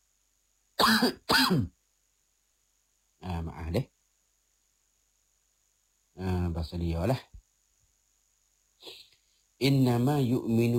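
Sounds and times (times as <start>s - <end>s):
person coughing harshly: 0.8s - 1.7s
speech: 0.8s - 1.8s, 3.2s - 3.9s, 6.2s - 7.3s, 9.6s - 10.7s.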